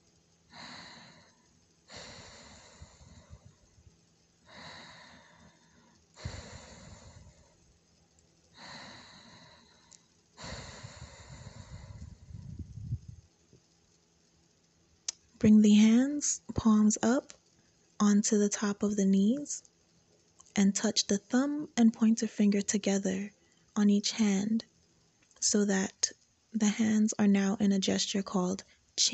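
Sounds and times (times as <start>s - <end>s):
Ujjayi breathing through constricted throat: 0.5s - 3.8s, 4.5s - 7.6s, 8.6s - 12.5s
speech: 15.4s - 17.4s, 18.0s - 19.7s, 20.6s - 24.7s, 25.4s - 29.1s.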